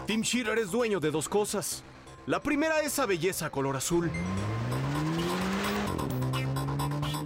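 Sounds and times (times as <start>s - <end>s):
speech: 0.1s - 4.5s
blue Corvette sports car engine accelerating hard: 4.1s - 7.2s.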